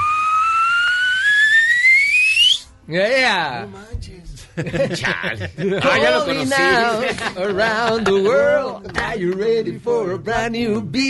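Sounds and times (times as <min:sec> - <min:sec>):
person whistling a long rising note: 0:00.0 - 0:02.8
speech: 0:02.9 - 0:11.0
faint low rhythmic thump: 0:03.9 - 0:05.6, 0:10.3 - 0:11.0
laughter: 0:04.4 - 0:09.3.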